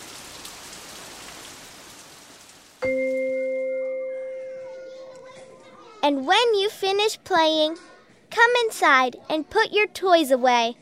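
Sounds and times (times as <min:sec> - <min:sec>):
steady rain falling: 0:00.0 - 0:03.4
bright sustained chime-like tone: 0:02.8 - 0:05.7
speech: 0:06.1 - 0:10.8.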